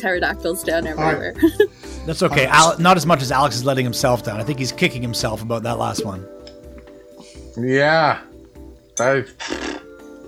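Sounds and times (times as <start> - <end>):
speech: 0.0 - 6.4, 7.6 - 8.3, 9.0 - 9.7
horse snorting: 9.3 - 10.0.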